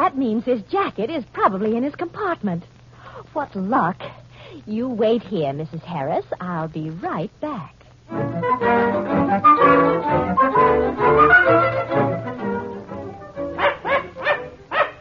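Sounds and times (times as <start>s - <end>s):
speech: 0.1s - 11.8s
small dog barking and yipping: 13.6s - 15.0s.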